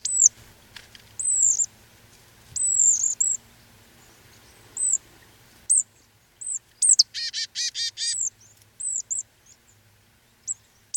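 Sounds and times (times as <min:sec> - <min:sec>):
marsh tit Poecile palustris calls: 0:01.2 - 0:01.7, 0:02.6 - 0:03.4, 0:04.0 - 0:05.0, 0:06.4 - 0:09.8.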